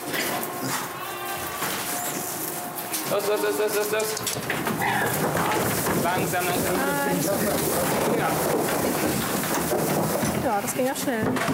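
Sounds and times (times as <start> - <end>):
busy noise of farm livestock being let out: 0.0 - 11.5
goat bleating while farm livestock are let out: 0.1 - 3.6, 4.8 - 5.7
speech: 3.1 - 11.5.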